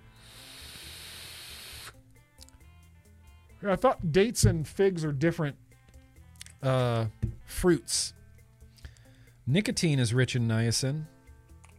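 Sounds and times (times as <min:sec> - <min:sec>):
vape coil on a rebuildable dripping atomizer hissing: 0:00.0 - 0:02.0
speech: 0:03.6 - 0:05.6, 0:06.6 - 0:08.2, 0:09.5 - 0:11.1.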